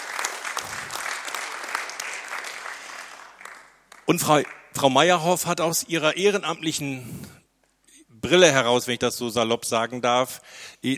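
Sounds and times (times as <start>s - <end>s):
audience applause at a care foundation event: 0.0s - 4.7s
speech: 4.1s - 7.4s, 8.2s - 10.9s.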